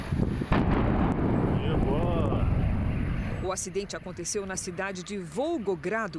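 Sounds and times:
gas station fuel tank explosion with heavy roar and rumble: 0.1 - 3.7
speech: 3.5 - 6.1.

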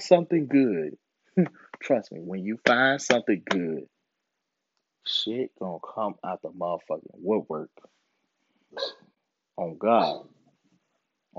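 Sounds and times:
speech: 0.0 - 3.9, 5.0 - 8.0, 8.7 - 10.4
pet dog giving short yelping barks: 8.8 - 9.0.

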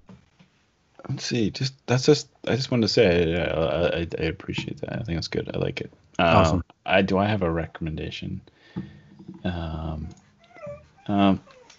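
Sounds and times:
speech: 1.0 - 10.2, 11.1 - 11.6
dog getting up and whimpering: 10.0 - 11.7.

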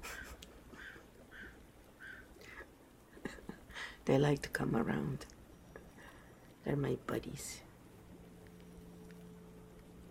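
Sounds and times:
low hum: 0.0 - 10.0
crow cawing outdoors: 0.8 - 2.4
speech: 4.0 - 5.4, 6.6 - 7.7.

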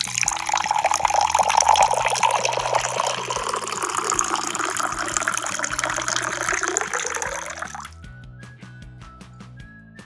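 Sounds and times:
water pouring into a cup: 0.0 - 7.9.

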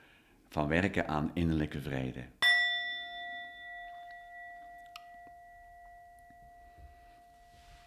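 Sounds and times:
speech: 0.5 - 2.4
gong being struck: 2.4 - 7.8.

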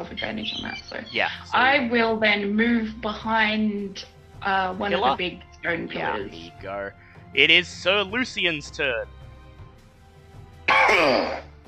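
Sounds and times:
speech: 0.0 - 9.2, 10.9 - 11.5
harsh raspy throat-clearing cough: 10.7 - 11.5.

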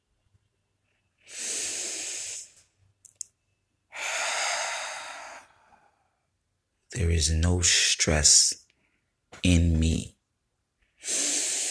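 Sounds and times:
slow deep breathing: 1.2 - 2.6, 3.9 - 6.3, 11.0 - 11.7
tiny clicks: 3.0 - 3.4
speech: 7.0 - 8.6, 9.5 - 10.1.

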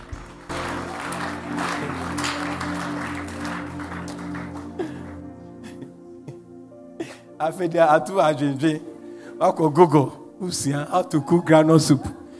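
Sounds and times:
audience applause: 0.0 - 5.7
steady keyboard or organ chords: 0.0 - 12.3
speech: 7.4 - 12.2.

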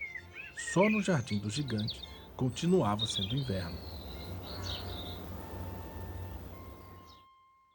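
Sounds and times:
songbirds chirping and singing: 0.0 - 7.3
speech: 0.6 - 4.8
faint tonal hum: 3.3 - 7.2.

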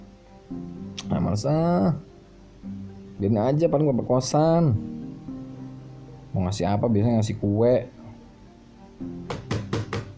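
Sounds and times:
speech: 1.3 - 5.0, 6.3 - 8.0, 9.0 - 9.3
knocking on a door: 9.2 - 10.1.

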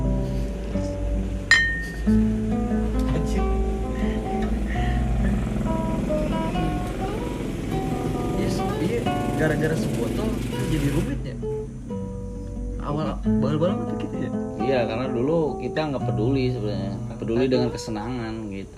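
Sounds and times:
low rumble of music: 0.0 - 18.6
glasses clinking in a toast: 1.5 - 2.1
speech: 15.7 - 18.7.

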